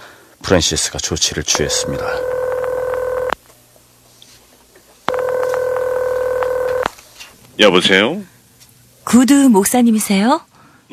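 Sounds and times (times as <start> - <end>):
speech: 0.5 - 2.4, 7.6 - 8.3, 9.0 - 10.9
loud steady electronic telephone line tones as a call is placed: 1.5 - 3.4, 5.1 - 6.9.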